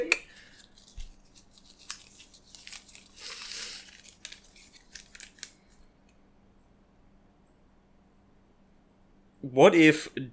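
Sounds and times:
paper slips rustling and crinkling as shuffled in a bag: 0.4s - 5.6s
speech: 9.4s - 10.3s.

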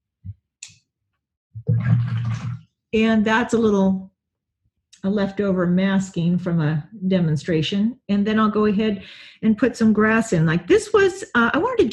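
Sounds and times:
water sloshing moved by hand on a table: 1.6s - 2.7s
speech: 2.1s - 4.1s, 5.0s - 11.9s.

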